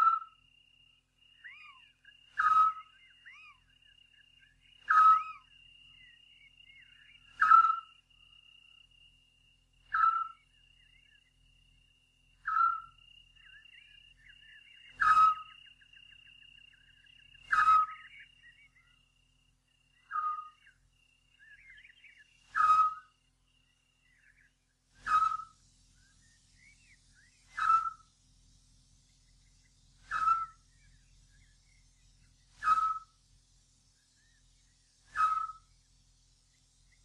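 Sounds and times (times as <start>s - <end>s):
Eurasian scops owl giving short mellow whistled notes: 0.0s - 0.4s, 1.4s - 3.6s, 4.8s - 5.5s, 6.8s - 8.0s, 9.9s - 10.4s, 12.4s - 16.2s, 17.4s - 18.8s, 20.0s - 20.8s, 21.4s - 23.2s, 25.0s - 25.6s, 27.3s - 28.1s, 30.0s - 30.6s, 32.5s - 33.2s, 35.0s - 35.7s
faint twittering from other birds: 0.0s - 37.0s
steady high insect drone: 0.0s - 37.0s.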